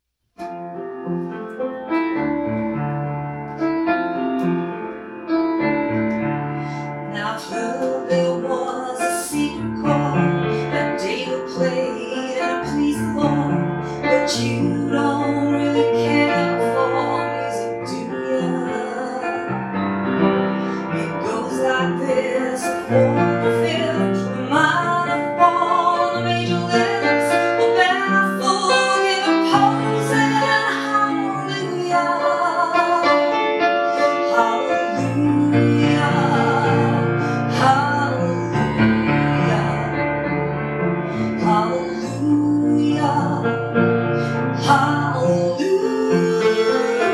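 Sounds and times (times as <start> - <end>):
piano: 0.0 - 47.1
person singing: 7.1 - 19.6, 20.8 - 40.0, 41.1 - 43.6, 44.2 - 47.1.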